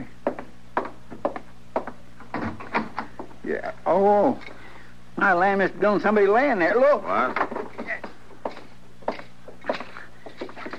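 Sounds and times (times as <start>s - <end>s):
wooden door rattling and knocking: 0.3s - 3.3s, 7.2s - 8.1s
wooden door thumping as it is worked open: 2.2s - 3.3s
speech: 3.5s - 4.6s, 5.2s - 7.5s.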